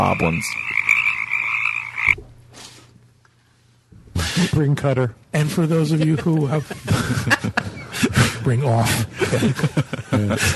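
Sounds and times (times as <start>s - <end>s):
speech: 0.0s - 0.8s, 4.4s - 7.8s, 8.4s - 10.5s
chorus of frogs croaking: 0.0s - 2.2s
laughter: 5.5s - 10.5s.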